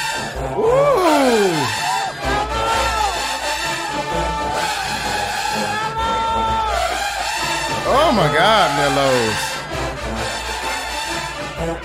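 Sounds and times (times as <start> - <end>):
crowd noise: 0.0 - 11.8
marching band clarinets playing sustained bright melodic lines: 0.0 - 11.8
speech: 8.4 - 9.5.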